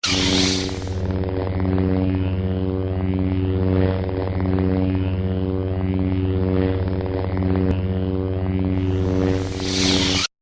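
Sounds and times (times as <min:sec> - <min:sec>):
lightsaber hum: 0:00.0 - 0:10.3.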